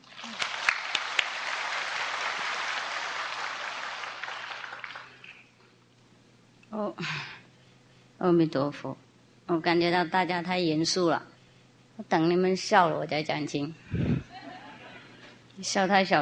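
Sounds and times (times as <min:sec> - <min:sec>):
sizable audience applauding: 0:00.0 - 0:05.4
speech: 0:06.8 - 0:07.3, 0:08.2 - 0:11.3, 0:12.0 - 0:14.0, 0:15.6 - 0:16.2.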